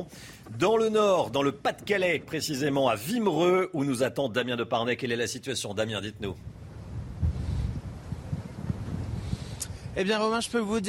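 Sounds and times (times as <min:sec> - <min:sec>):
speech: 0:00.0 - 0:06.6, 0:10.0 - 0:10.8
strong autumn storm wind buffeting the microphone on a seaside seawall in northern France: 0:06.0 - 0:10.8.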